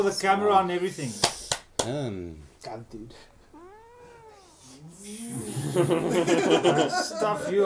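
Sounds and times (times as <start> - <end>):
speech: 0.0 - 3.3, 4.8 - 7.6
feral cat meowing: 3.5 - 5.0
laughter: 5.4 - 7.6.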